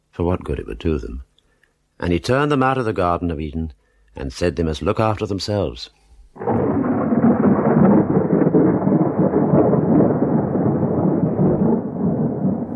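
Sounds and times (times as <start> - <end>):
speech: 0.2 - 1.3, 2.0 - 6.6
stormy wash of noise: 6.3 - 12.7
loud continuous rolling thunder: 6.4 - 12.7.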